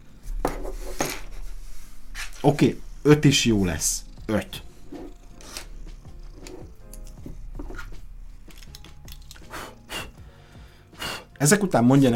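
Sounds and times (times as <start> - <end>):
speech: 2.4 - 4.6, 11.4 - 12.1
cat purring: 2.8 - 8.5.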